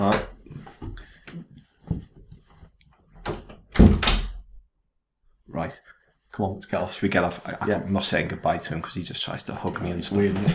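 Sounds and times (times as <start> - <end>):
front door thudding shut: 3.2 - 4.5
door latch clicking and rattling: 3.3 - 4.4
speech: 5.7 - 10.5.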